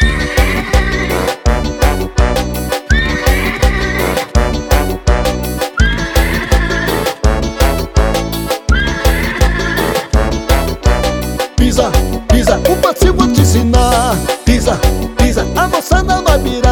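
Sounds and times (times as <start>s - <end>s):
whinnying horse neigh effect in music: 0.0s - 1.4s, 2.9s - 4.4s, 5.8s - 7.3s, 8.7s - 10.2s
upbeat piseiro dance track with pounding bass beat: 0.0s - 16.7s.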